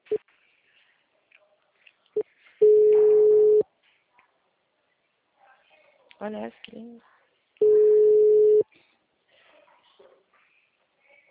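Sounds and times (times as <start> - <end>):
telephone call tones: 2.6 - 3.6, 7.6 - 8.6
speech: 6.2 - 7.2.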